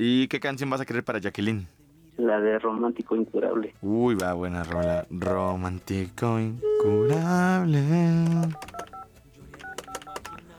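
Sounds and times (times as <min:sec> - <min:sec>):
speech: 0:00.0 - 0:08.9
touch-tone beeps of a telephone number being dialed quickly: 0:06.6 - 0:07.4, 0:08.3 - 0:10.4.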